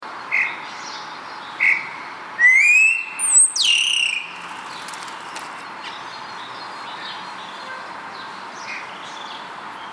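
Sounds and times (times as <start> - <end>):
Spotless starling calling with whistles: 1.6 - 5.1.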